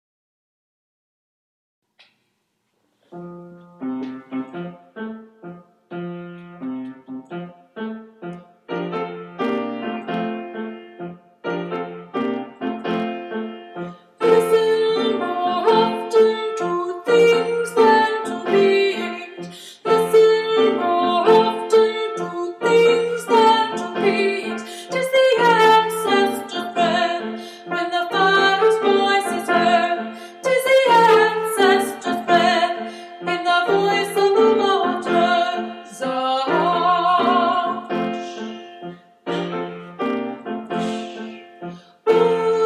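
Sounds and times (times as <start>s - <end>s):
piano: 3.0s - 42.6s
soprano breaths: 19.4s - 19.9s, 27.2s - 27.7s, 30.0s - 30.4s, 32.8s - 33.3s, 40.7s - 42.1s.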